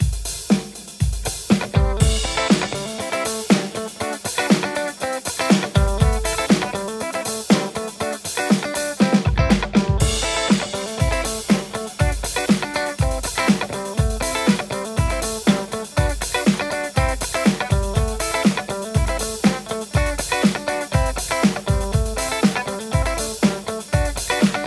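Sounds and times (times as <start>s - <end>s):
electric guitar: 1.4s - 24.6s.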